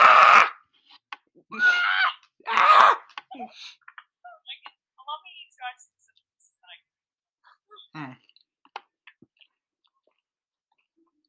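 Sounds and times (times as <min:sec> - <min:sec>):
person screaming: 0:00.0 - 0:00.6, 0:01.5 - 0:03.1
speech: 0:03.4 - 0:03.8
breaths: 0:03.4 - 0:03.9.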